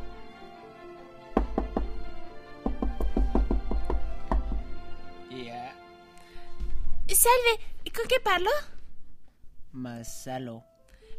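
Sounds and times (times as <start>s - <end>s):
sharp knocking on a door: 1.3s - 4.9s
speech: 7.2s - 8.7s, 9.8s - 10.7s.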